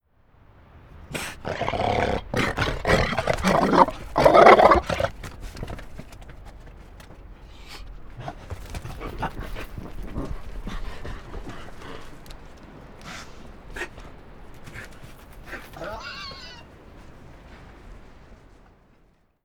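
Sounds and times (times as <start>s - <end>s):
NZ fur seal growling with guttural threat in air: 1.1s - 6.4s, 8.1s - 13.9s, 15.5s - 16.6s.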